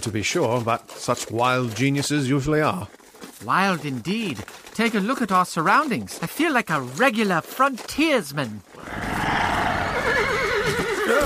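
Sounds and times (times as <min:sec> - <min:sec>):
speech: 0:00.0 - 0:09.0
frightened horses shrieking and rearing: 0:08.7 - 0:11.2.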